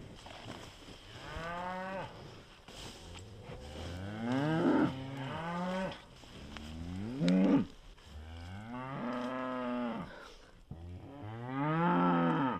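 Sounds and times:
several cows mooing in long drawn-out calls: 0:03.4 - 0:10.2, 0:10.8 - 0:12.5.

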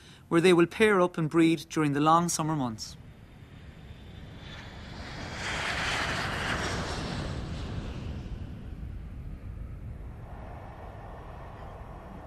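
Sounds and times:
speech: 0:00.3 - 0:03.0
airplane engine drone inside the cabin: 0:03.0 - 0:12.2.

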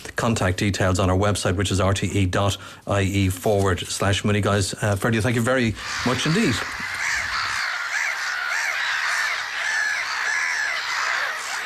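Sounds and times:
speech: 0:00.2 - 0:07.0
black-headed gulls calling: 0:05.1 - 0:11.6.

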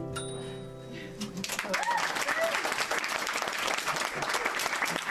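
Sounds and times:
ringing bell-like chime: 0:00.1 - 0:00.9
round of applause from a small audience: 0:01.3 - 0:05.0.

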